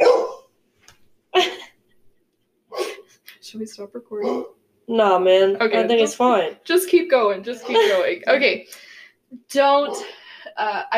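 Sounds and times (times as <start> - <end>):
faint dog yip: 0.0 - 0.4
dog barking sharply: 0.0 - 0.5, 4.2 - 4.5
speech: 3.5 - 10.9.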